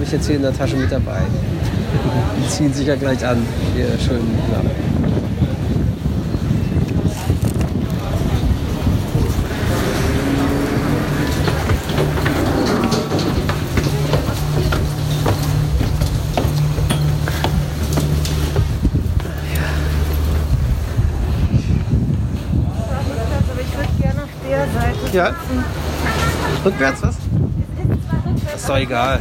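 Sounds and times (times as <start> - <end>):
wind buffeting the microphone aboard a motor vessel: 0.0 - 29.1
speech: 0.1 - 4.9, 25.2 - 25.8, 26.6 - 27.2, 28.7 - 29.1
motor vessel engine drone: 8.2 - 22.0.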